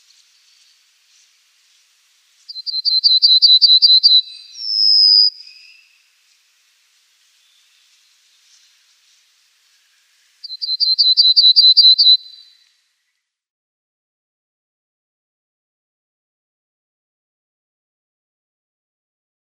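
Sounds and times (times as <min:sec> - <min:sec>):
pine bunting singing: 0:02.5 - 0:06.0, 0:10.4 - 0:12.6.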